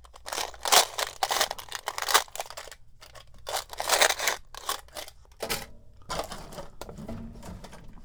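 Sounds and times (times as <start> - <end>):
box of nails shaking: 0.0 - 5.1.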